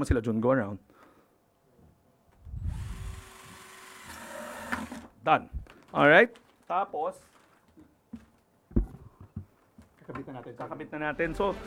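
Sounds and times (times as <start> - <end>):
speech: 0.0 - 0.9, 5.2 - 7.3, 10.1 - 11.6
ordinary power drill whirring: 2.5 - 5.1.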